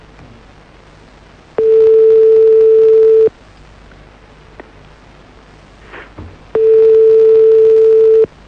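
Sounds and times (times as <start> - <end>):
faint noise on a phone line: 0.0 - 8.4
telephone ringback tone heard through a phone line: 1.6 - 3.3, 6.6 - 8.3.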